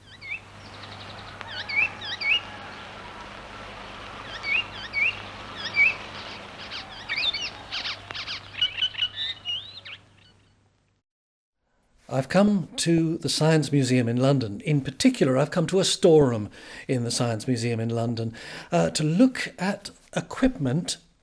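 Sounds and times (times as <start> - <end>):
yellow icterine warbler singing chattering song: 0.0 - 10.6
soft outdoor background: 0.0 - 11.0, 11.6 - 21.2
speech: 12.1 - 21.2.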